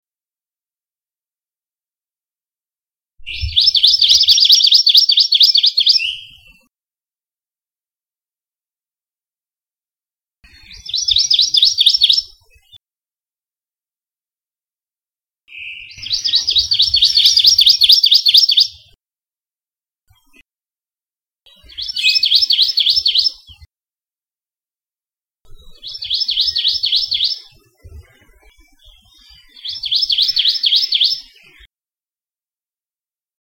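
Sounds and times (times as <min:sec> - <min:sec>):
amakihi singing: 0:03.2 - 0:06.5, 0:10.6 - 0:12.4, 0:15.5 - 0:18.8, 0:21.6 - 0:23.4, 0:25.8 - 0:27.5, 0:29.3 - 0:31.4.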